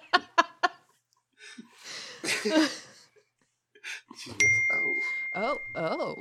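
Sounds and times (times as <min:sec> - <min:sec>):
people laughing: 0:00.0 - 0:00.8, 0:01.9 - 0:03.2
people talking: 0:04.2 - 0:06.1
phone text message notification ding: 0:04.4 - 0:06.1.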